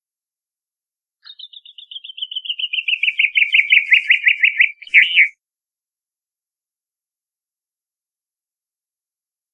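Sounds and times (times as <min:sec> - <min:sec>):
chaffinch singing: 0:01.2 - 0:05.4.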